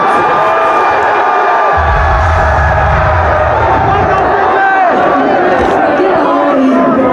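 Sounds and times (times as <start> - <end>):
crowd of people outside cheering and whooping: 0.0 - 7.0
deep low rumble: 1.8 - 5.0.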